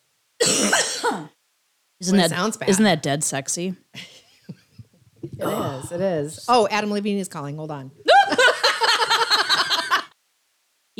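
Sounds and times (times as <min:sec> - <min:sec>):
harsh rasping cough: 0:00.4 - 0:01.4, 0:04.8 - 0:05.9
speech: 0:01.0 - 0:01.4, 0:02.0 - 0:04.2, 0:05.4 - 0:08.1
gravelly throat clearing: 0:05.3 - 0:05.8
laughter: 0:08.1 - 0:10.1.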